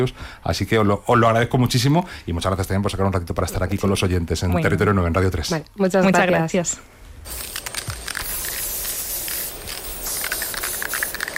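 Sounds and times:
speech: 0:00.0 - 0:07.5
aerosol spray paint can hissing: 0:07.2 - 0:11.3.

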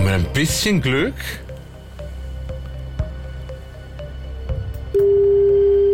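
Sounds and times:
speech: 0:00.1 - 0:01.4
telephone ringback tone on an outgoing call: 0:05.0 - 0:05.9.

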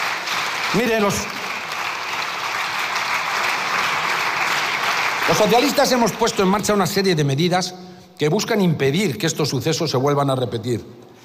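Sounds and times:
applause in a parliament chamber: 0:00.0 - 0:07.0
speech: 0:00.7 - 0:01.4, 0:05.3 - 0:11.0.

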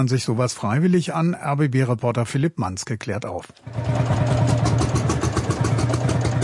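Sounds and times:
speech: 0:00.0 - 0:04.1
old tractor engine rattling: 0:03.7 - 0:06.4.

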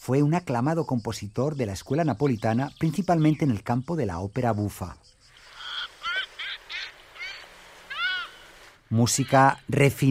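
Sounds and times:
speech: 0:00.0 - 0:05.1, 0:08.9 - 0:10.0
Audouin's gull calling: 0:05.2 - 0:09.7.

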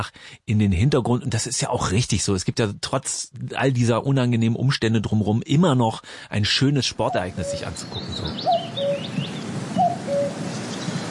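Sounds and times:
speech: 0:00.0 - 0:08.8
hiss: 0:00.0 - 0:11.0
bird whistling: 0:07.1 - 0:10.9.

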